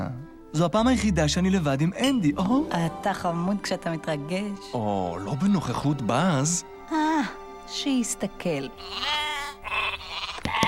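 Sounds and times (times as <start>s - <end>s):
speech: 0.0s - 9.8s
sheep bleating: 8.8s - 10.6s.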